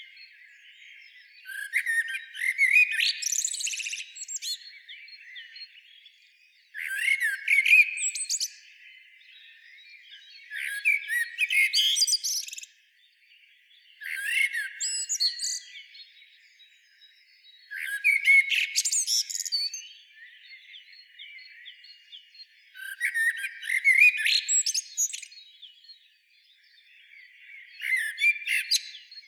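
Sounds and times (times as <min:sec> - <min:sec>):
common blackbird Turdus merula singing: 0:00.0 - 0:29.2.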